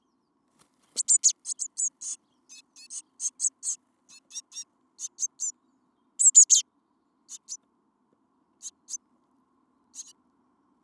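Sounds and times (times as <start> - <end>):
Eurasian blue tit Cyanistes caeruleus calls: 0.9 - 5.5, 6.2 - 6.6, 7.3 - 7.6, 8.6 - 9.0, 9.9 - 10.2.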